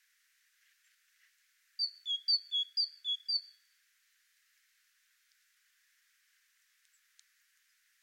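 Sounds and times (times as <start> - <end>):
great tit Parus major seesaw whistled song: 1.8 - 3.6.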